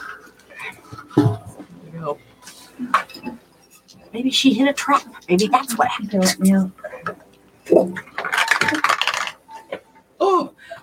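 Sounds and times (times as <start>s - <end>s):
speech: 2.0s - 2.3s, 4.2s - 6.8s, 7.8s - 8.1s
dice clattering across a tabletop during a tabletop role-playing game: 8.2s - 9.4s.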